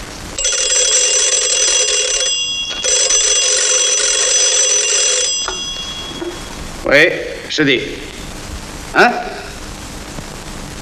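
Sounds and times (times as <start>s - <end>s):
old-fashioned telephone bell ringing: 0.4s - 6.7s
speech: 6.9s - 8.2s, 9.0s - 9.3s.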